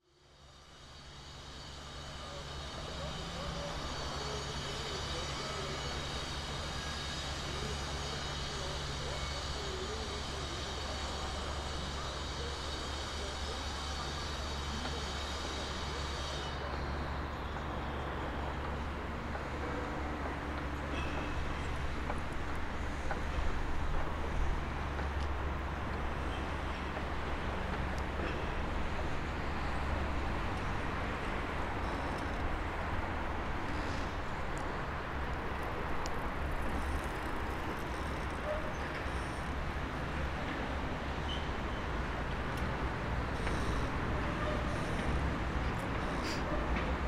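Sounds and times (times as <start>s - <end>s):
harbour industrial sounds: 0.2s - 47.0s.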